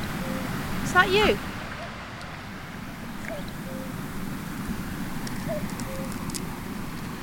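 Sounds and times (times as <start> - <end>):
cuckoo calling: 0.0 - 2.0, 3.0 - 6.6
rushing roar of a waterfall: 0.0 - 7.2
speech: 0.9 - 1.5.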